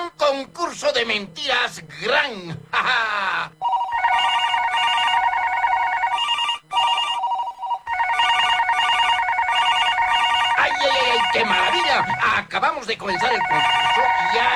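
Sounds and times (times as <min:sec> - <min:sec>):
speech: 0:00.3 - 0:04.4, 0:11.3 - 0:14.5
radio station telephone ringing with electronic warbling tone: 0:03.6 - 0:14.5.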